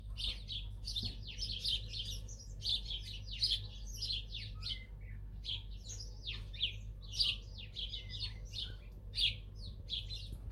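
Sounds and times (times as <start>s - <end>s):
birds calling: 0.0s - 10.5s.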